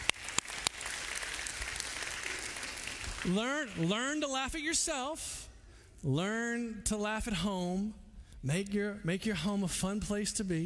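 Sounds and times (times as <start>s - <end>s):
crowd applauding: 0.0s - 4.0s
speech: 3.2s - 5.4s, 6.0s - 10.6s.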